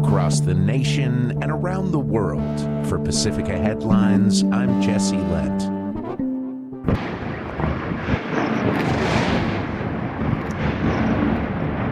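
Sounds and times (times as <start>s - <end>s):
speech: 0.3s - 5.8s
explosions from airstrikes over a city: 6.8s - 11.8s.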